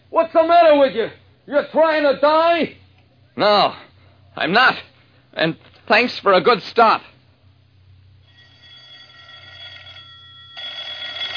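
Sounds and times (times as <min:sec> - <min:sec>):
speech: 0:00.2 - 0:02.8, 0:03.4 - 0:07.1
telephone bell ringing with a metallic trill: 0:08.2 - 0:11.3.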